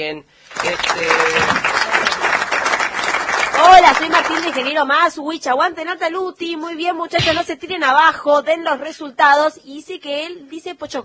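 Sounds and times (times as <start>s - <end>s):
speech: 0.0s - 2.2s, 3.6s - 11.0s
crowd applause: 0.5s - 4.9s.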